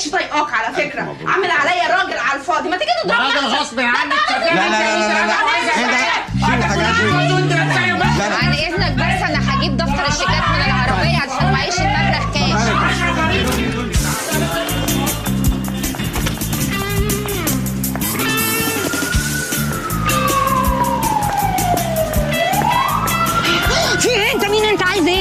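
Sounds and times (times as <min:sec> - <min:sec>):
speech: 0:00.1 - 0:05.4
laughter: 0:03.1 - 0:17.3, 0:23.4 - 0:25.1
police car siren wailing: 0:06.7 - 0:08.0, 0:18.0 - 0:25.1.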